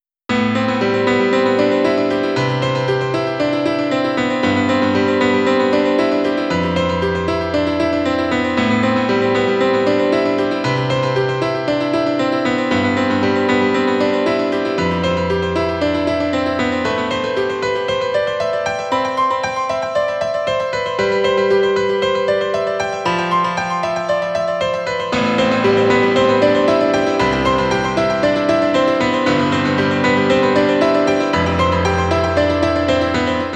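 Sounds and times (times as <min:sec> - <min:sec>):
piano with delay effect: 0:00.3 - 0:33.5.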